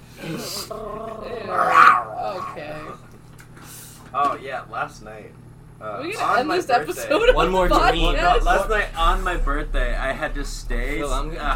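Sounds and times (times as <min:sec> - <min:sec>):
person imitating snarling, growling dogs in a scuffle: 0:00.2 - 0:02.6
speech: 0:00.3 - 0:01.7, 0:02.3 - 0:03.1, 0:04.1 - 0:11.5.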